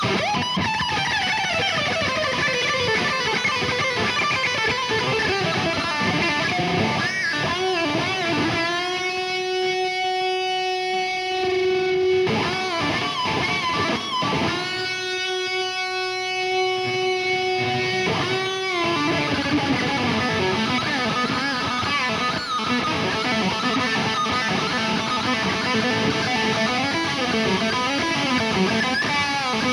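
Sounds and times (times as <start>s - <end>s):
live guitar solo in Mannheim Germany: 0.0s - 29.7s.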